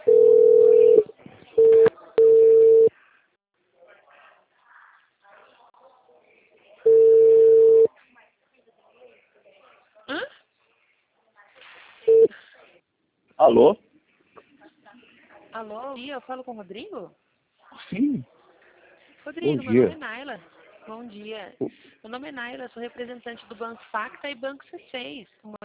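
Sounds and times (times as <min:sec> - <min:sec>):
ringback tone of an outgoing phone call: 0:00.0 - 0:02.9, 0:06.9 - 0:07.9, 0:12.1 - 0:12.3
speech: 0:13.5 - 0:13.9, 0:15.6 - 0:17.2, 0:17.9 - 0:18.4, 0:19.2 - 0:25.6.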